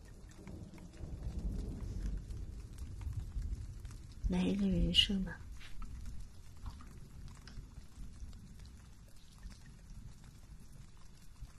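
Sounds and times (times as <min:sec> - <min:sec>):
steady rain: 0:00.0 - 0:11.5
deep low rumble: 0:00.4 - 0:08.6
speech: 0:04.3 - 0:05.4.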